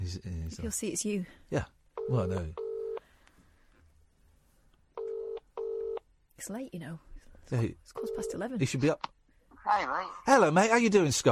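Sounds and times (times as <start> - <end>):
speech: 0.2 - 2.6, 6.4 - 11.3
electronic ringing tones of an outgoing phone call: 2.0 - 3.0, 5.0 - 6.0, 8.0 - 8.4.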